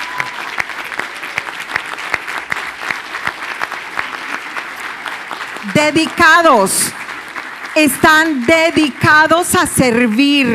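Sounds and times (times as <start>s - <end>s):
audience applauding for teachers: 0.0s - 10.5s
speech: 5.7s - 7.0s, 7.8s - 10.5s.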